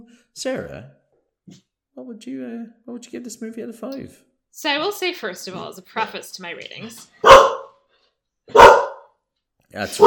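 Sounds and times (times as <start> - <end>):
speech: 0.4 - 7.6, 9.7 - 10.0
dog barking: 7.2 - 7.8, 8.5 - 9.2, 9.9 - 10.0.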